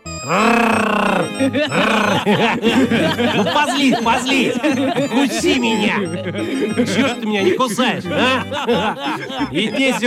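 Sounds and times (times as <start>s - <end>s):
man growling and roaring imitating a lion: 0.2s - 2.3s
laughter: 0.2s - 10.0s
speech: 0.2s - 10.0s.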